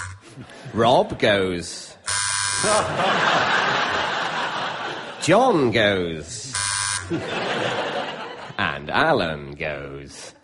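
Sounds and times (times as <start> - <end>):
electronic novelty buzzer: 0.0 - 0.2, 2.0 - 3.0, 6.5 - 7.2
speech: 0.4 - 2.0, 2.6 - 4.2, 5.2 - 6.4, 7.1 - 7.9, 8.5 - 10.4
audience laughter: 2.7 - 5.4, 7.0 - 8.6.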